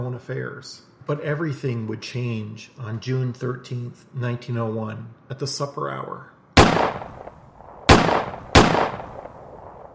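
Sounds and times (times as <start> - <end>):
speech: 0.0 - 6.3
sharp gunshots with short tail: 6.6 - 9.9.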